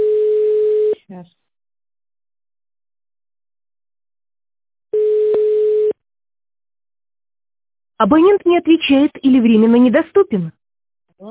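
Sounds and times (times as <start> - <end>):
telephone line tone while a call is being placed: 0.0 - 1.0, 5.0 - 6.0
speech: 8.0 - 10.6.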